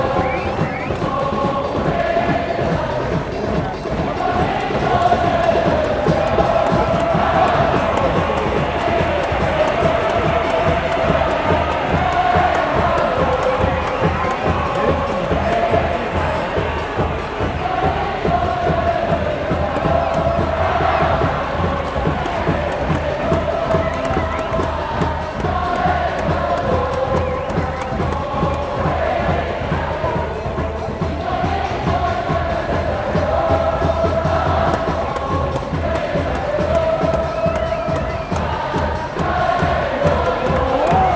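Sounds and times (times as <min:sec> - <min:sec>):
rapid regular drumming or clapping: 0:00.0 - 0:41.1
stadium crowd singing and chanting: 0:00.0 - 0:41.1.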